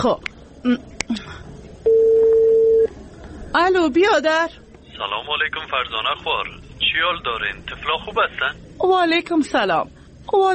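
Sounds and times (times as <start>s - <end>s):
speech: 0.0s - 1.4s, 3.5s - 10.5s
mobile phone keypad beeps and clicks while dialing: 1.9s - 2.9s
mobile phone ringing tone: 1.9s - 2.9s.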